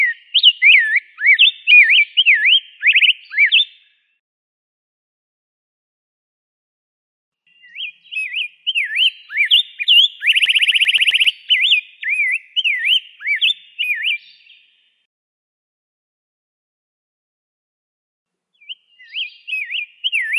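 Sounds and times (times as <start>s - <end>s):
rose-breasted grosbeak song: 0.0s - 4.2s, 7.5s - 15.1s, 18.5s - 20.3s.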